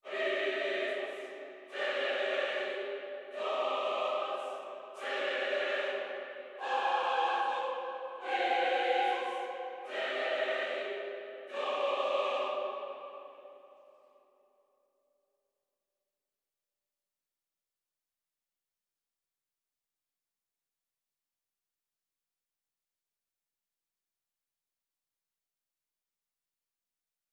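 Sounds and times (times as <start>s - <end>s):
choir singing melodies in C minor at 147 BPM: 0.0s - 14.5s.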